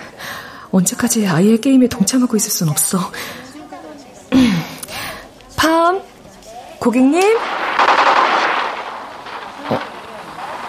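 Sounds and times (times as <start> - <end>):
speech: 0.7 - 3.5, 6.8 - 7.6
rapid burst of gunfire: 7.4 - 10.6.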